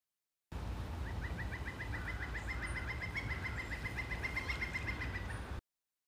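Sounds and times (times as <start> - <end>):
steady rushing hiss: 0.5 - 5.6
pileated woodpecker calling: 1.0 - 5.5.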